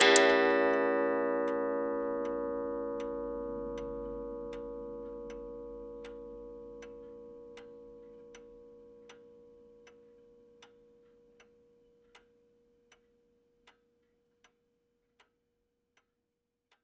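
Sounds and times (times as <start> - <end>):
antique clock chime: 0.0 - 7.5.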